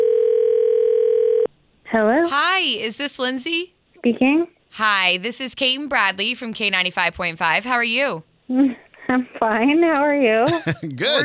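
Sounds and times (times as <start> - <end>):
steady loud telephone dial tone: 0.0 - 1.5
speech: 1.9 - 11.2
laughter: 10.5 - 11.2.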